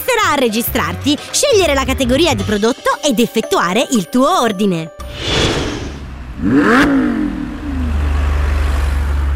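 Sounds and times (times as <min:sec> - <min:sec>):
speech: 0:00.1 - 0:05.3, 0:06.4 - 0:07.2
Ferrari sports car engine revving: 0:06.0 - 0:09.2.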